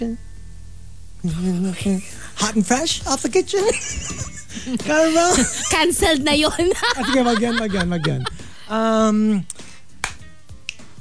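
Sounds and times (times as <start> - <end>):
speech: 0.0 - 0.3, 1.2 - 9.6
laughter: 3.6 - 8.7
finger snaps: 9.5 - 10.9.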